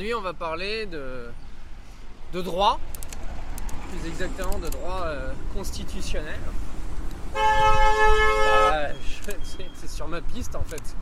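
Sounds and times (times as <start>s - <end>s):
speech: 0.0s - 1.4s, 2.3s - 3.0s, 3.9s - 6.7s, 7.3s - 11.0s
car horn honking: 7.3s - 9.8s.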